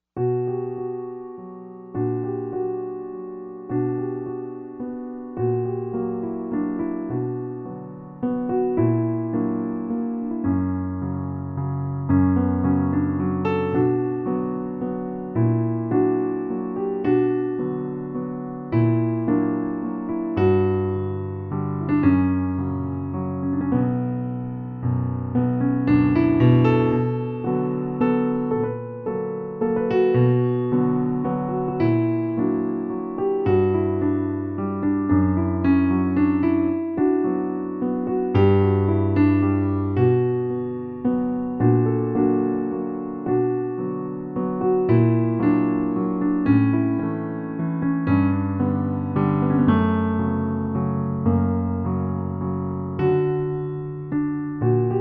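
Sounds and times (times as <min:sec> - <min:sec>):
piano sketch: 0:00.2 - 0:54.9.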